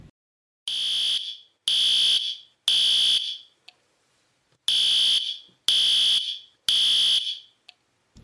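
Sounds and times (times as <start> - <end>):
loud shrill fire alarm beeping: 0.7 - 3.5, 4.7 - 7.6.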